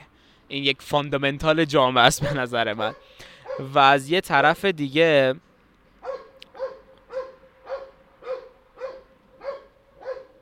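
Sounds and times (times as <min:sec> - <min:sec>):
speech: 0:00.5 - 0:05.5
dog barking sharply: 0:02.2 - 0:03.7, 0:06.0 - 0:10.4.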